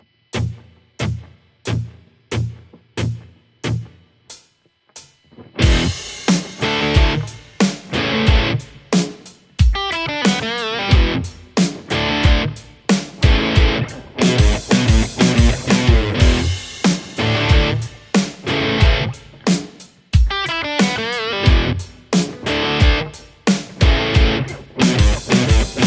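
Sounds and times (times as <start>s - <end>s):
Les Paul electric guitar: 5.3s - 9.1s, 9.7s - 25.8s.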